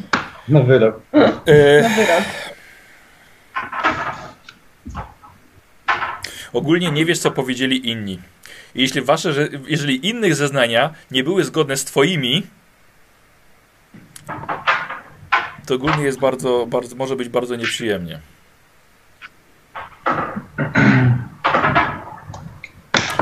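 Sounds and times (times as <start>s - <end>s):
speech: 0.5s - 2.5s, 6.5s - 12.6s, 15.7s - 18.4s, 20.6s - 21.1s
laughter: 1.5s - 2.6s
window blind knocking against its frame in the blowing wind: 3.6s - 5.2s, 19.8s - 23.2s.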